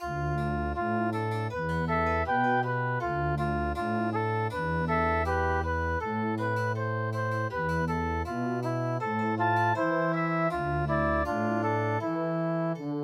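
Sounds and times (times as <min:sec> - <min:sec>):
MIDI wind instruments playing traditional music: 0:00.0 - 0:13.0.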